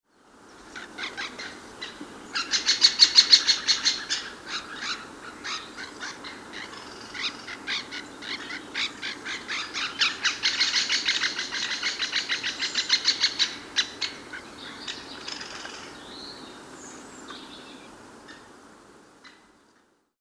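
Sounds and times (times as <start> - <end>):
great spotted woodpecker calls: 0.6 - 16.0.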